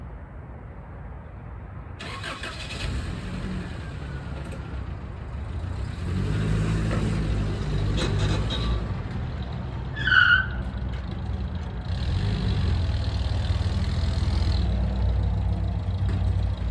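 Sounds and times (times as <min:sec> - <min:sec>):
car engine rumbling as the car drives away: 0:02.0 - 0:09.7, 0:10.6 - 0:16.6
high squeal: 0:10.0 - 0:10.7.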